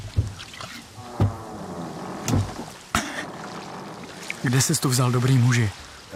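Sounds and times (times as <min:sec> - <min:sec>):
hollow wooden thumps of someone clambering into a small fisherman's boat at sea: 0:00.0 - 0:03.4
faint creaking of a small boat: 0:00.0 - 0:04.9
water lapping against the hull of a small boat at sea: 0:00.0 - 0:06.1
speech: 0:04.4 - 0:06.1.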